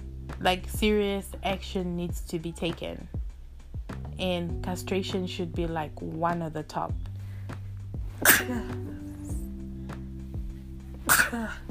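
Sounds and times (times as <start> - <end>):
speech: 0.4 - 3.2, 4.2 - 7.1, 8.4 - 9.1, 11.3 - 11.6
person sneezing: 8.2 - 9.0, 11.0 - 11.6.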